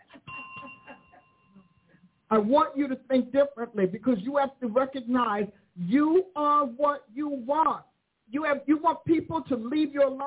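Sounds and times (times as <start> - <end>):
bell ringing with a steady sustained ding: 0.2 - 2.1
speech: 2.3 - 10.2.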